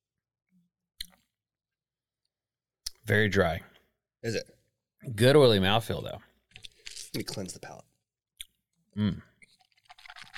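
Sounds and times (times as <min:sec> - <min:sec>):
speech: 0:03.1 - 0:06.3, 0:07.1 - 0:07.9, 0:09.0 - 0:09.3
person sipping a drink: 0:09.0 - 0:10.3.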